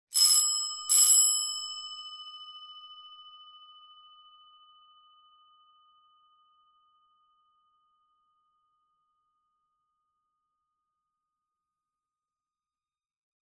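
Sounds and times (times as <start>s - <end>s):
door bell: 0.1s - 3.8s.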